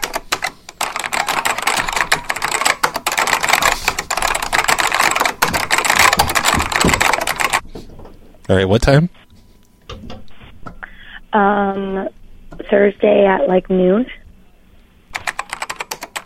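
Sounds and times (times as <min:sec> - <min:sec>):
rapid typing on a computer keyboard: 0:00.0 - 0:07.6, 0:15.1 - 0:16.2
speech: 0:08.5 - 0:09.2, 0:11.4 - 0:14.2.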